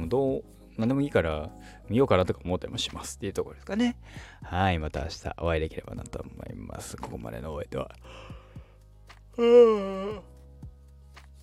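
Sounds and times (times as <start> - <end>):
speech: 0.1 - 8.4, 9.4 - 10.3
voiced yawn: 9.4 - 10.3.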